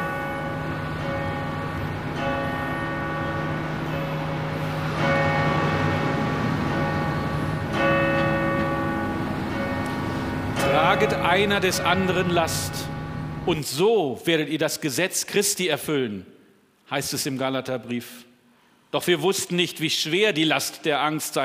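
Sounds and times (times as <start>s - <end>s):
church bells ringing an alarm: 0.0s - 13.7s
speech: 11.0s - 18.3s, 18.9s - 21.4s.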